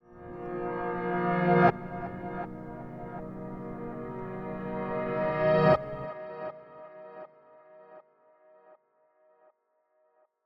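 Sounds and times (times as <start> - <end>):
reversed piano production element: 0.0 - 6.1.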